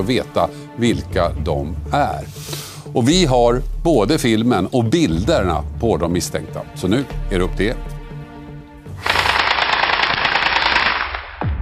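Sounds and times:
speech: 0:00.0 - 0:08.0
automatic weapon firing bursts at a house: 0:09.0 - 0:11.4.

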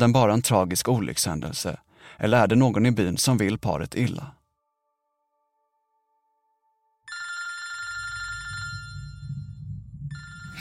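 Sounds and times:
speech: 0:00.0 - 0:04.4
telephone ringing with warbling electronic tone: 0:07.0 - 0:10.5
low rumbling background: 0:08.0 - 0:10.5.

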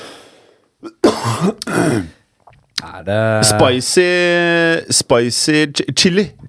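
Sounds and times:
faint breath: 0:00.0 - 0:00.7
rough coughing bursts: 0:00.8 - 0:02.2
speech: 0:01.4 - 0:02.2, 0:03.0 - 0:06.4.

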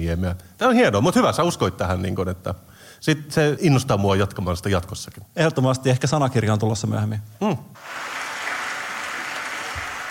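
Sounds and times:
speech: 0:00.0 - 0:08.2
crowd applauding: 0:07.8 - 0:10.0.

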